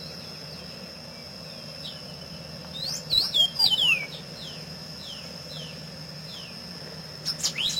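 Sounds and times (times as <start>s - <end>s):
steady high hum: 0.0s - 7.7s
masked yellowthroat singing slurred whistled phrases: 2.7s - 5.7s, 7.2s - 7.7s.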